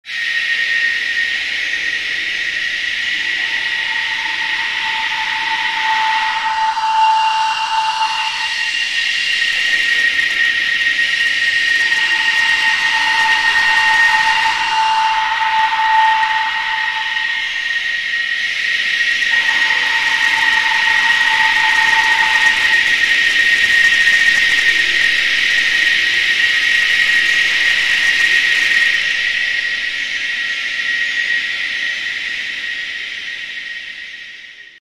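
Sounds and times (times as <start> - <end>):
cicadas buzzing: 0.2 - 33.3.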